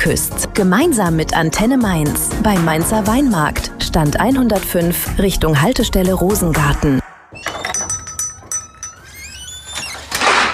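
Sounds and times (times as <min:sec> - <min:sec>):
speech: 0:00.0 - 0:07.0
utensils clinking and rattling inside a kitchen drawer: 0:07.4 - 0:10.5
kitchen drawer sliding open or shut: 0:09.0 - 0:10.5.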